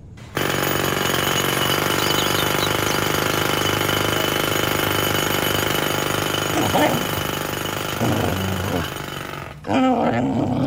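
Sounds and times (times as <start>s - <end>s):
jackhammer drilling in the street: 0.0s - 9.7s
growl-like sound: 8.0s - 10.6s.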